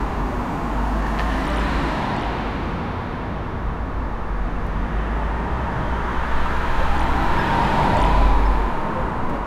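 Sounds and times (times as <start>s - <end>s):
city traffic: 0.0s - 9.4s.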